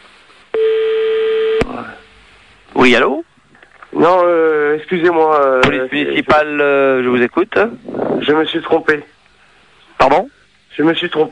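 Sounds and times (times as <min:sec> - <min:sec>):
faint telephone line hiss: 0:00.0 - 0:11.3
telephone tone after a call is hung up: 0:00.6 - 0:01.7
speech: 0:02.8 - 0:03.3, 0:03.9 - 0:09.1, 0:10.0 - 0:11.3.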